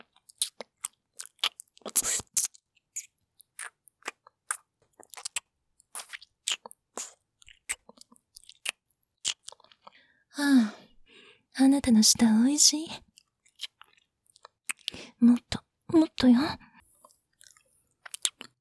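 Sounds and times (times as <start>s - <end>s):
wet smacking deep-kissing sounds: 1.2s - 4.6s, 5.2s - 7.8s, 8.5s - 9.5s
speech: 11.6s - 13.1s, 15.2s - 15.5s, 16.2s - 16.6s.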